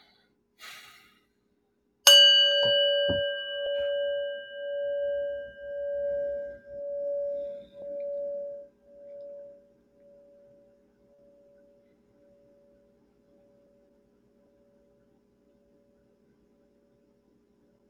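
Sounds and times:
soft breath: 0.0 - 1.5, 7.1 - 8.6
meditation bell struck and ringing: 2.1 - 13.9.

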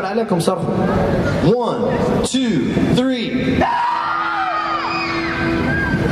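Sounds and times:
speech: 0.0 - 4.0
large concert crowd screaming: 3.6 - 6.1.

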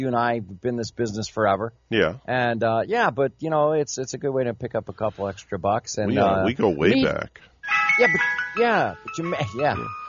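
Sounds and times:
speech: 0.0 - 10.0
ice cream truck tinkling jingle passing by in the early morning: 7.6 - 10.0.

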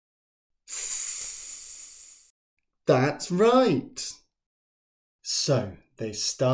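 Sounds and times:
voice imitating a snake hiss: 0.7 - 2.3
speech: 2.9 - 4.2, 5.3 - 6.5.

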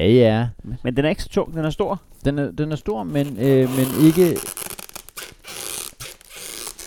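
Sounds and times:
speech: 0.0 - 4.7
Christmas present wrapping paper crinkling: 3.2 - 6.8.

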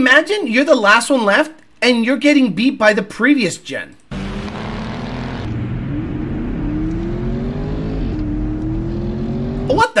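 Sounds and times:
speech: 0.0 - 4.0
Mustang Dark Horse V8 engine accelerating in a drag race: 4.1 - 9.8.

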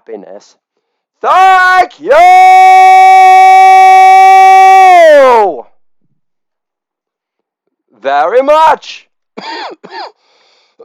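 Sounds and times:
speech: 0.0 - 0.6, 1.2 - 4.0, 5.1 - 5.7, 8.0 - 10.2
person coughing harshly: 9.4 - 10.2
raspy wheezing intake of breath: 10.2 - 10.8.

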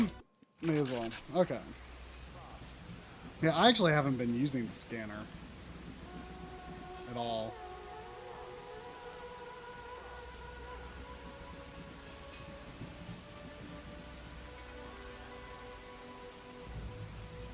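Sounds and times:
speech: 0.0 - 1.9, 3.4 - 5.4, 7.1 - 7.6
video game rain sound effect pattering on a hard surface: 0.0 - 17.5
faint sustained tonal hums: 1.2 - 17.5.

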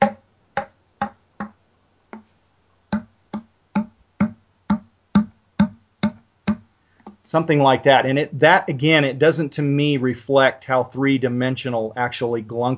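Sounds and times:
grunt tube call end tapped against a palm: 0.0 - 2.3, 2.9 - 7.2
speech: 7.3 - 12.7.

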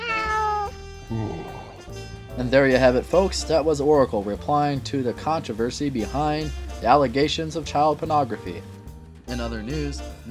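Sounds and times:
cat meowing: 0.0 - 0.9
speech: 2.4 - 10.3.

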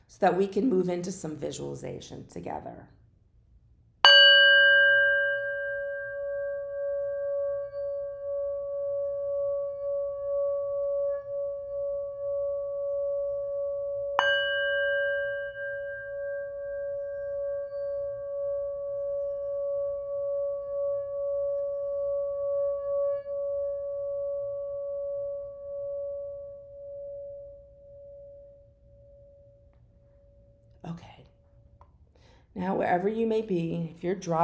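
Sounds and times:
speech: 0.1 - 3.0, 32.6 - 34.4
singing bowl struck and ringing: 4.0 - 30.8.

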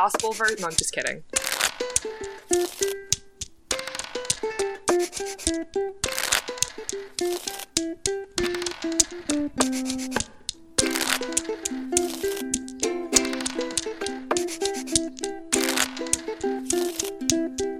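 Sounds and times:
speech: 0.0 - 3.0, 5.2 - 6.0
bright plucky melody of stepping notes: 0.0 - 17.7
dice clattering: 0.1 - 17.7
playing cards riffling: 0.2 - 17.7.

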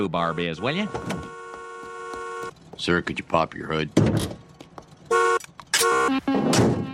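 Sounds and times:
speech: 0.0 - 1.4, 2.8 - 4.4
car horn honking: 0.0 - 2.6, 5.1 - 6.9.

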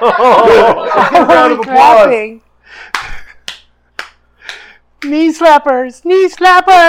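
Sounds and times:
laughter: 0.0 - 2.1
speech: 0.0 - 3.2, 5.0 - 6.8
finger snapping: 2.9 - 4.7.

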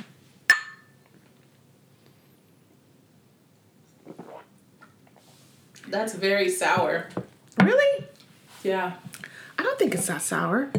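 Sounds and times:
two glasses clinking during a toast: 0.5 - 1.0
speech: 5.9 - 7.9, 8.6 - 9.1, 9.8 - 10.7.

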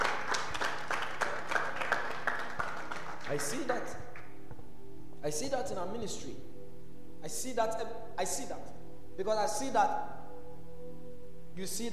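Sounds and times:
audience clapping hands in a steady rhythmic beat: 0.0 - 4.4
speech: 3.3 - 4.0, 5.2 - 6.5, 7.2 - 10.1, 11.6 - 11.9.

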